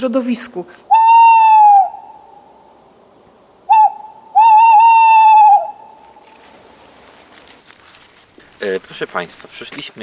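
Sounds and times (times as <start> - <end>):
speech: 0.0 - 0.9, 8.6 - 10.0
owl hooting: 0.9 - 2.6, 3.7 - 6.4.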